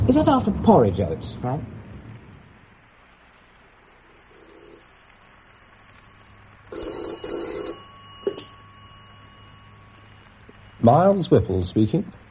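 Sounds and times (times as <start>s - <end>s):
speech: 0.1s - 1.7s, 10.9s - 12.2s
home telephone bell ringing with an incoming call: 3.8s - 10.8s.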